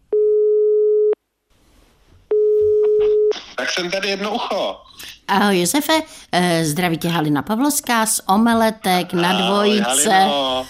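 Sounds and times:
faint room noise: 0:00.0 - 0:10.6
telephone ringback tone while calling: 0:00.2 - 0:01.2
speech: 0:03.6 - 0:10.6.

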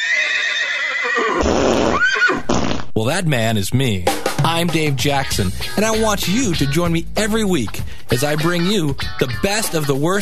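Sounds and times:
horse neighing at a parade: 0:00.0 - 0:02.9
speech: 0:03.0 - 0:10.2.

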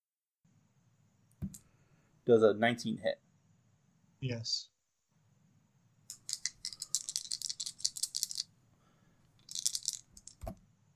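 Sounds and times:
speech: 0:02.3 - 0:03.2, 0:04.2 - 0:04.7
handful of dice rattling and clattering across a hard surface: 0:06.1 - 0:08.5, 0:09.3 - 0:10.6.

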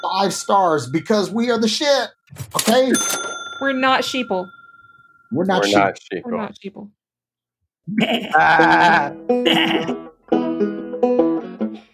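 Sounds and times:
speech: 0:00.1 - 0:04.6, 0:05.3 - 0:07.0, 0:07.9 - 0:10.0
sheep bleating: 0:08.0 - 0:10.0.

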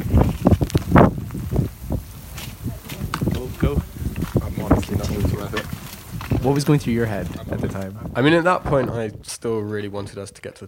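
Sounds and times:
rain on a foggy mountainside: 0:00.0 - 0:08.0
strong wind gusts on a foggy mountainside: 0:00.0 - 0:10.2
speech: 0:06.5 - 0:10.6.

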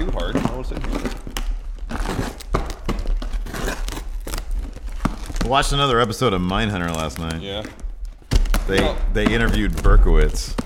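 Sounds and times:
packaging material crinkling and tearing: 0:00.0 - 0:10.6
speech: 0:05.5 - 0:07.8, 0:08.7 - 0:10.6.

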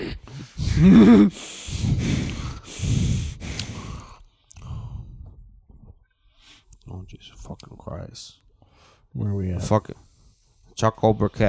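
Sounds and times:
person imitating heavy labored breathing: 0:00.0 - 0:05.2
speech: 0:00.8 - 0:01.5, 0:09.2 - 0:10.1, 0:10.8 - 0:11.4.

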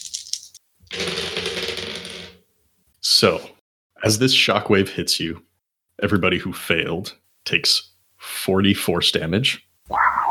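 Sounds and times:
dice being rolled and rattling: 0:00.0 - 0:02.4
speech: 0:03.2 - 0:10.2.

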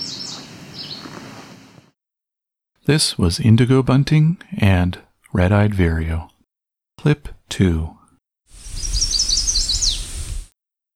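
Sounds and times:
chestnut-sided warbler singing: 0:00.0 - 0:01.2, 0:08.6 - 0:10.5
speech: 0:02.9 - 0:06.3, 0:07.0 - 0:08.0.

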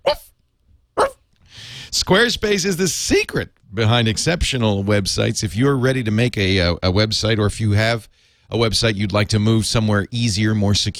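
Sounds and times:
small dog yapping: 0:00.0 - 0:00.3, 0:01.0 - 0:01.2
speech: 0:02.0 - 0:10.9.

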